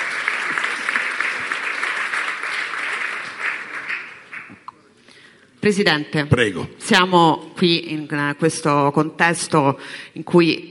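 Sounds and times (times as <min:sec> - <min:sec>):
audience applause: 0:00.0 - 0:04.7
speech: 0:05.6 - 0:10.6.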